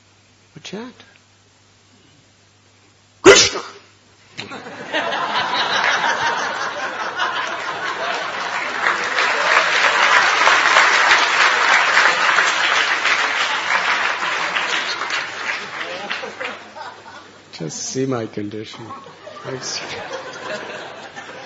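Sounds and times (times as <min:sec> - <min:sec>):
speech: 0:00.6 - 0:01.1, 0:03.5 - 0:03.8, 0:17.6 - 0:20.7
laughter: 0:04.4 - 0:17.5, 0:18.7 - 0:21.4
large audience applause: 0:04.8 - 0:17.2.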